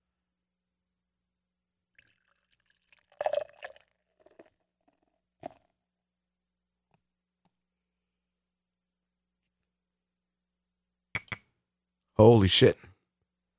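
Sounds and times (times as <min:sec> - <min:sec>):
high-gravity beer pouring into a glass: 0:01.9 - 0:05.7
glass clink: 0:11.2 - 0:11.4
speech: 0:12.2 - 0:12.9.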